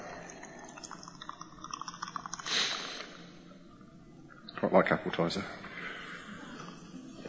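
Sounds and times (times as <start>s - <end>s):
sparkling drink being poured out of a can: 0.0s - 3.2s
speech: 4.6s - 5.7s.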